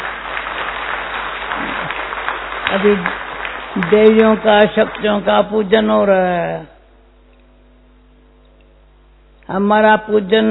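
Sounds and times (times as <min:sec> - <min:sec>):
audience applause at a devotional gathering for goddess worship: 0:00.0 - 0:05.4
speech: 0:02.7 - 0:06.7, 0:09.5 - 0:10.4.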